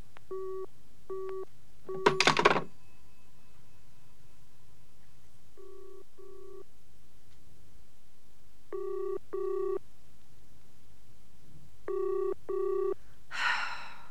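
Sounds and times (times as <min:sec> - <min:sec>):
telephone ringing: 0:00.3 - 0:02.7, 0:08.7 - 0:09.8, 0:11.9 - 0:13.0.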